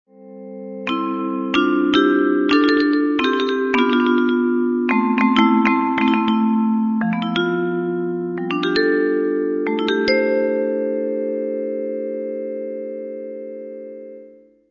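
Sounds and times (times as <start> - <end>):
vibraphone: 0.3 - 14.5.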